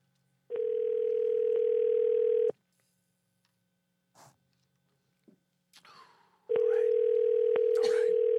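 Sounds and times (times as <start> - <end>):
phone line ringback tones on an outgoing call: 0.5 - 2.5, 6.5 - 8.3.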